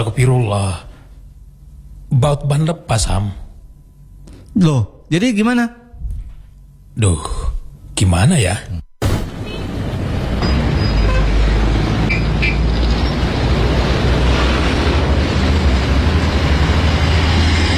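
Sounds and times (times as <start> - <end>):
speech: 0.0 - 0.9, 2.1 - 3.4, 4.6 - 5.8, 7.0 - 7.4, 8.0 - 8.8
traffic rumble on a road: 9.0 - 17.7.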